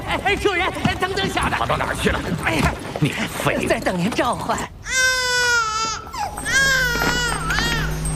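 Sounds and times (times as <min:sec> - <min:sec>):
speech: 0:00.1 - 0:04.8
baby crying: 0:04.8 - 0:08.0.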